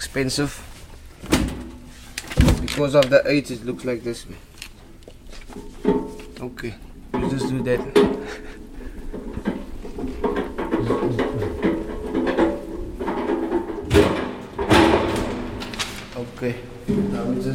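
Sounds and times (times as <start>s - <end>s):
faint noise: 0.0s - 17.5s
speech: 0.1s - 0.7s, 2.8s - 4.5s, 6.4s - 8.4s, 16.4s - 17.5s
laughter: 8.2s - 8.8s
automatic door solid bumps as it shuts: 10.2s - 16.0s.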